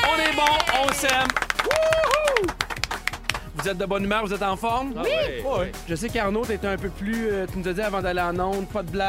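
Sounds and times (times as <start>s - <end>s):
person cheering with a rising and falling voice: 0.0s - 2.6s
hosts clapping: 0.0s - 4.0s
speech: 0.4s - 2.6s, 3.6s - 9.0s.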